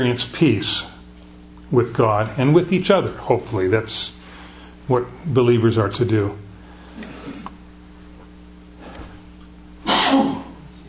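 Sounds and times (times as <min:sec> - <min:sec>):
speech: 0:00.0 - 0:00.9, 0:01.7 - 0:04.2, 0:04.9 - 0:06.4
sneeze: 0:09.8 - 0:10.6.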